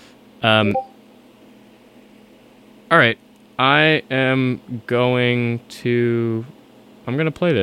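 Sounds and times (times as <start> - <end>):
speech: 0.4 - 0.9, 2.9 - 7.6
short electronic app notification chime from a computer: 0.7 - 0.9.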